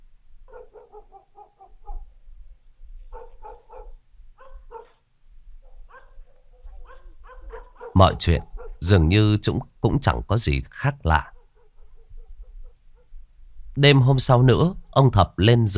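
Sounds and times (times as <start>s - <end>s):
dogs barking in the night: 0.5s - 2.1s, 3.1s - 8.9s, 11.2s - 13.2s
speech: 8.0s - 11.3s, 13.8s - 15.7s.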